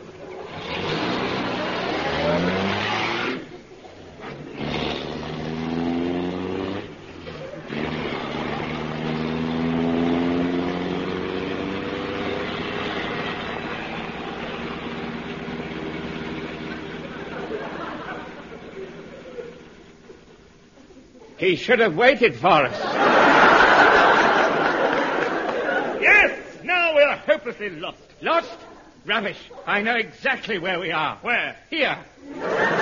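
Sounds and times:
car engine running as the car drives on: 0:00.0 - 0:20.1
laughter: 0:07.2 - 0:08.0, 0:16.5 - 0:21.4, 0:22.6 - 0:26.6, 0:32.2 - 0:32.8
speech: 0:21.4 - 0:23.1, 0:27.4 - 0:32.6.

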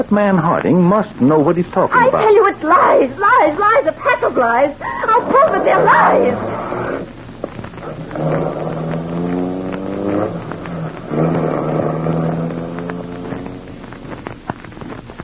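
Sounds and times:
speech: 0:00.0 - 0:06.6
steady road and wind noise: 0:07.6 - 0:15.2
car engine revving and pulling away through gear changes: 0:07.8 - 0:14.4.

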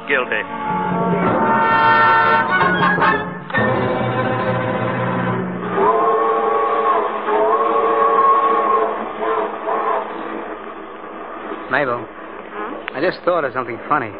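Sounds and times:
loud train rumbling: 0:00.0 - 0:14.1
speech: 0:00.1 - 0:01.0, 0:13.2 - 0:14.1
train horn-like whistle sounding chord-like blasts: 0:00.5 - 0:10.6.

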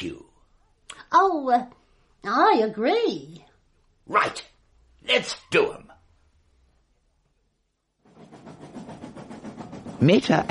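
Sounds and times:
speech: 0:01.1 - 0:03.4, 0:04.1 - 0:05.8, 0:10.0 - 0:10.4
train running on rails with wheels clattering over rail joints: 0:08.1 - 0:10.4.

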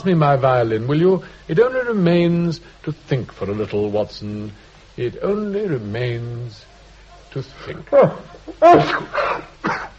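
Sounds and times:
speech: 0:00.0 - 0:06.7, 0:07.3 - 0:09.8
person sneezing after taking snuff: 0:08.0 - 0:09.9.

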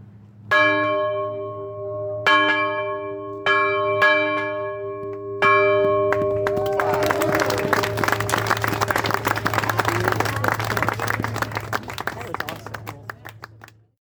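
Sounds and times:
large resonant courthouse bell struck on the courthouse lawn: 0:00.5 - 0:09.0
crowd applauding and cheering: 0:06.1 - 0:13.8.

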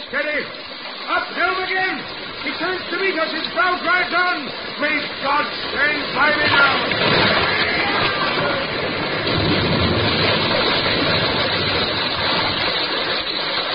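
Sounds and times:
water gushing through a breach in a ship's starboard bow: 0:00.0 - 0:13.7
speech: 0:00.1 - 0:07.7.

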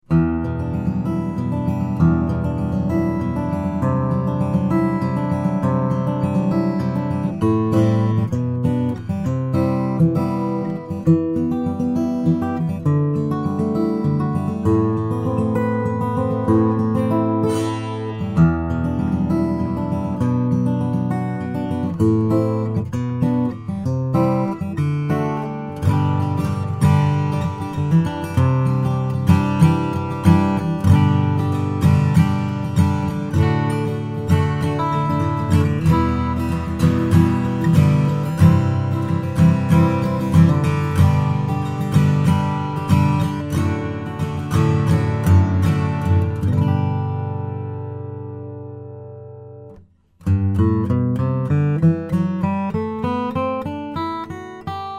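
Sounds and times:
slope dreadnought steel string flattop guitar: 0:00.0 - 0:54.9.

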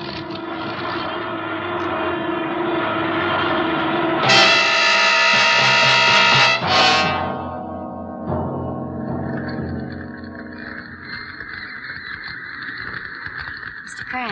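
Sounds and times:
failing starboard airplane engine on fire as the plane goes down: 0:00.0 - 0:14.2.

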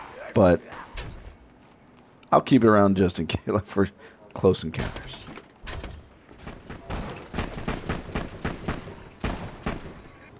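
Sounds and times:
speech: 0:00.4 - 0:01.1, 0:02.3 - 0:05.3
video game pistol gunshots: 0:05.6 - 0:10.2.

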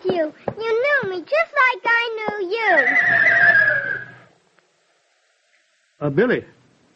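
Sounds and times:
speech: 0:00.1 - 0:03.5, 0:06.0 - 0:06.6
white circus horse neighing: 0:02.7 - 0:04.3.

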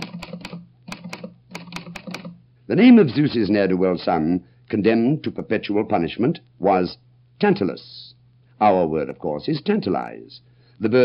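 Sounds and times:
typing on an Underwood typewriter: 0:00.0 - 0:02.4
speech: 0:02.7 - 0:11.0.

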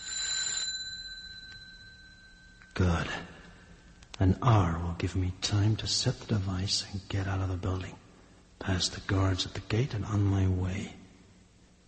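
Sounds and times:
electric bell ringing: 0:00.0 - 0:02.8
speech: 0:02.8 - 0:03.4, 0:04.2 - 0:08.0, 0:08.6 - 0:11.0.

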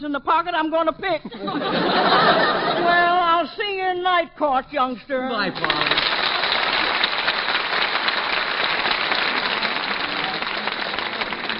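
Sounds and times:
speech: 0:00.0 - 0:06.2
laughter: 0:01.2 - 0:03.3, 0:05.4 - 0:06.9
large indoor crowd clapping at a town hall: 0:05.4 - 0:11.5
large indoor crowd murmur at a town hall: 0:09.1 - 0:11.5.

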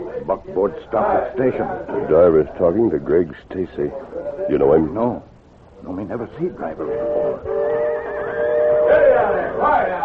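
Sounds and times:
speech: 0:00.2 - 0:07.6, 0:08.9 - 0:10.0
sustained steady whistle tone: 0:06.6 - 0:10.0.

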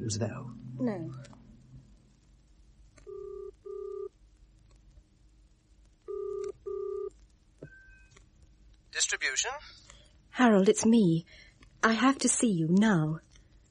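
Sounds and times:
faint hum: 0:00.0 - 0:13.7
speech: 0:00.1 - 0:01.4, 0:08.9 - 0:09.8, 0:10.4 - 0:13.2
steady telephone line tone: 0:03.0 - 0:04.1, 0:06.1 - 0:08.1
telephone ringing tone down the line from a phone box: 0:03.1 - 0:04.1, 0:06.1 - 0:07.1.

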